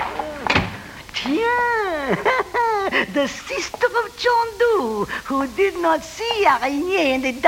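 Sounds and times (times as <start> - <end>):
door shut quickly with solid thumps: 0.0 - 0.9
laughter: 2.0 - 3.5
speech: 3.0 - 7.4.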